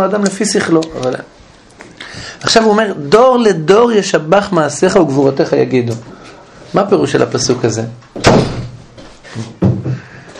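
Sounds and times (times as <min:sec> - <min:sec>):
speech: 0:00.0 - 0:01.4, 0:02.1 - 0:08.5
door being closed with a heavy slam: 0:08.1 - 0:08.9
dull thuds: 0:08.2 - 0:08.9.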